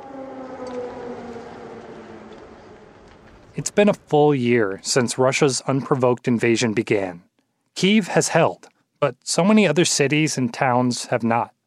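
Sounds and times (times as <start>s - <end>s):
air raid sirens wailing: 0.0s - 3.8s
speech: 3.6s - 11.6s.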